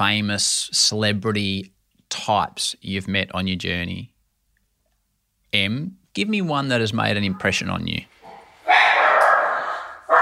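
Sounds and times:
speech: 0.0 - 4.1, 5.5 - 8.2
dog barking: 8.2 - 10.1.

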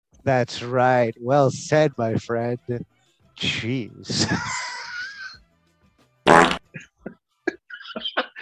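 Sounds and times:
speech: 0.2 - 4.6
laughter: 4.1 - 5.4, 6.8 - 8.4
loud fart with sputtering bursts: 6.3 - 6.8.

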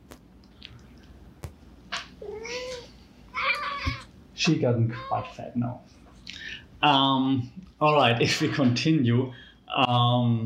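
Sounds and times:
cat meowing and yowling as it climbs: 2.2 - 5.4
speech: 4.4 - 6.0, 6.8 - 10.4.

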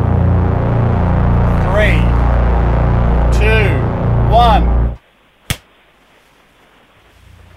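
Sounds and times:
faint low rumble: 0.0 - 5.2, 5.8 - 7.5
hand slapping a shoulder: 5.5 - 5.7.

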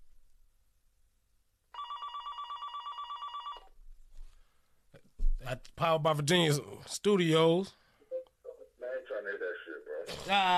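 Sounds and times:
telephone ringing with an incoming call: 1.7 - 3.7
speech: 5.5 - 7.8, 10.3 - 10.5.

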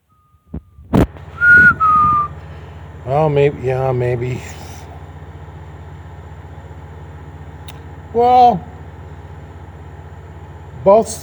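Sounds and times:
person whistling two sustained steady notes: 1.4 - 2.4
speech: 3.1 - 4.6, 8.2 - 8.7, 10.8 - 11.2.

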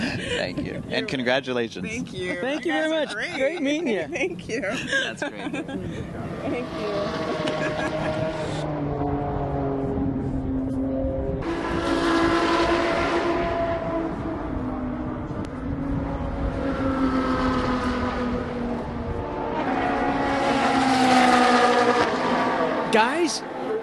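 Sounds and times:
laughter: 0.0 - 0.6, 2.2 - 6.2, 7.3 - 8.6
engine noise at a raceway: 0.0 - 23.8
speech: 0.4 - 8.7, 23.0 - 23.5
Ferrari Challenge race car engines roaring past at a raceway: 5.5 - 23.8.

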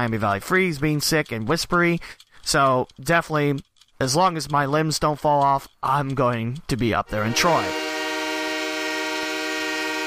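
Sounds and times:
speech: 0.0 - 7.8
hockey goal horn honking: 7.1 - 10.0.

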